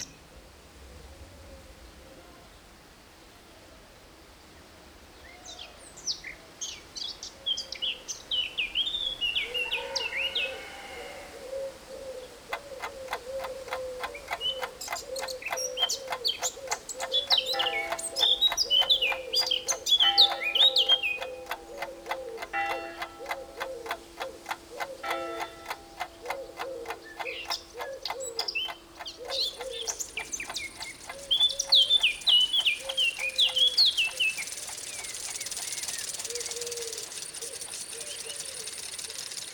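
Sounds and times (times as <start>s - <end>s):
birds chirping and tweeting in the countryside: 7.9s - 39.5s
fast steady ticking rhythm: 12.4s - 39.5s.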